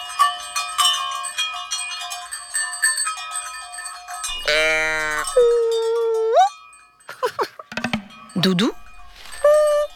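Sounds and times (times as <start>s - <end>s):
cowbells clanging together in a herd: 0.0s - 9.9s
cow mooing: 4.4s - 5.5s
speech: 8.4s - 8.8s.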